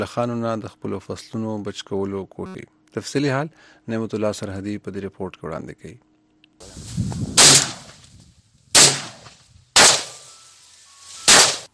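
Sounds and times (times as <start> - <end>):
speech: 0.0 - 7.3
rough noise: 6.6 - 11.7
gunshots fired by a farmer to drive locusts from crops: 7.4 - 7.9, 8.8 - 10.3, 11.3 - 11.7.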